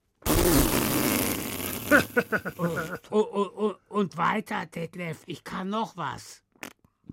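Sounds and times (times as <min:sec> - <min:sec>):
raspy fart-like body percussion blast: 0:00.1 - 0:03.0
laughter: 0:01.9 - 0:03.7
speech: 0:02.0 - 0:06.4.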